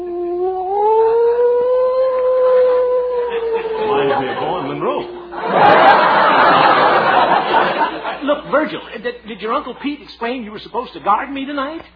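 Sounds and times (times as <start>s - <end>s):
man imitating a coyote howl: 0.0s - 5.5s
laughter: 2.5s - 8.7s
speech: 9.0s - 11.9s.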